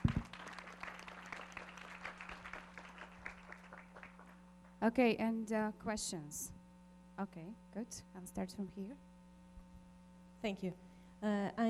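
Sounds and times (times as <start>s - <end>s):
audience applause after a presentation: 0.0s - 4.4s
low steady hum: 0.0s - 11.6s
speech: 4.8s - 6.6s, 7.2s - 9.1s, 10.4s - 11.6s.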